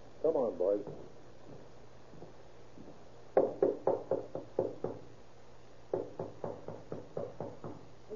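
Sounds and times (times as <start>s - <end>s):
firm knocking on a room door: 0.8s - 2.3s, 3.4s - 5.1s, 5.9s - 7.9s.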